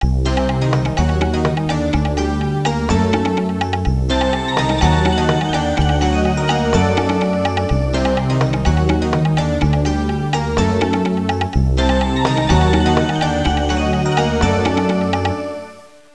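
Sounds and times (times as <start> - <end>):
traditional Far East music: 0.0 - 16.0.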